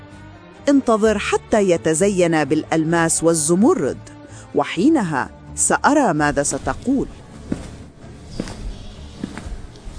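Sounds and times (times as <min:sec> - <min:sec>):
speech: 0:00.7 - 0:07.2
slow footsteps: 0:06.5 - 0:09.9.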